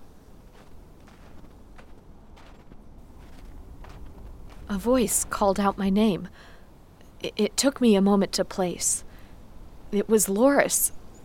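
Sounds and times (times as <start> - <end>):
faint crunching footsteps: 0.0 - 6.6
steady outdoor hiss: 0.0 - 11.2
speech: 4.7 - 6.5, 7.2 - 9.1, 9.9 - 11.0.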